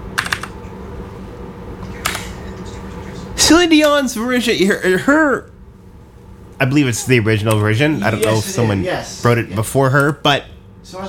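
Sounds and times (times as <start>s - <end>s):
low steady hum: 0.0s - 11.0s
clicky keypresses on a mechanical keyboard: 0.2s - 0.5s
speech: 3.5s - 5.5s, 6.6s - 11.0s.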